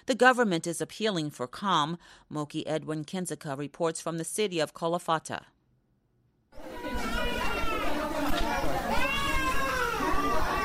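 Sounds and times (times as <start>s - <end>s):
speech: 0.0s - 5.6s
several infants crying: 6.7s - 10.6s.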